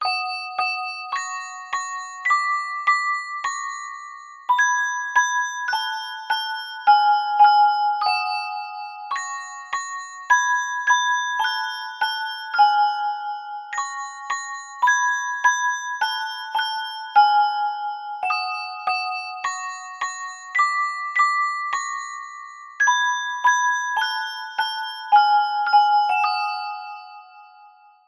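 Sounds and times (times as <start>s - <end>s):
horror music box evil tune: 0.0s - 28.0s.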